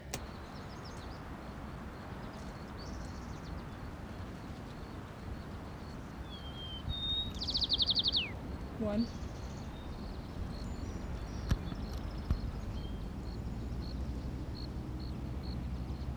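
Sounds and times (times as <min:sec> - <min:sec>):
steady low noise: 0:00.0 - 0:16.1
white-crowned sparrow song: 0:00.0 - 0:16.1
speech: 0:08.8 - 0:09.2.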